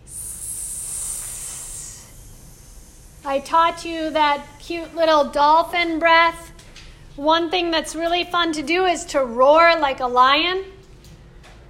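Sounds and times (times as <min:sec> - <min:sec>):
person hissing like a snake as a breathing exercise: 0:00.0 - 0:04.6
speech: 0:03.2 - 0:06.5, 0:07.2 - 0:10.7.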